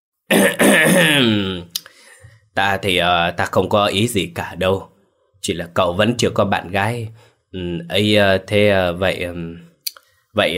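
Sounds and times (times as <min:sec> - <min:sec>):
man clearing his throat: 0:00.3 - 0:01.7
speech: 0:02.6 - 0:09.7, 0:10.4 - 0:10.5.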